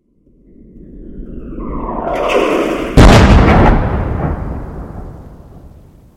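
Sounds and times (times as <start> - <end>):
missile: 2.1 - 6.1.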